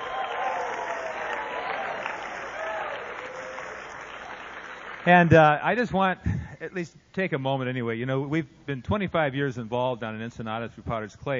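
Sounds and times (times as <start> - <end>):
audience applauding at a morning gathering: 0.0 - 5.4
speech: 5.0 - 11.3.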